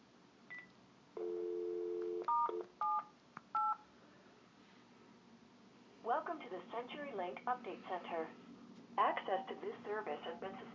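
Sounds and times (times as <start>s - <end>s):
telephone keypad tones dialing on a phone line: 0.5s - 3.0s, 3.6s - 3.8s
telephone dial tone on a phone line: 1.2s - 3.0s
speech: 6.3s - 8.4s, 9.0s - 10.7s.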